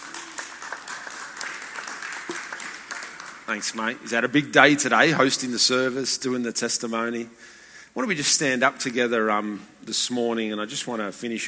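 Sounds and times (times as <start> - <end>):
audience applause: 0.0 - 3.7
speech: 3.5 - 11.4.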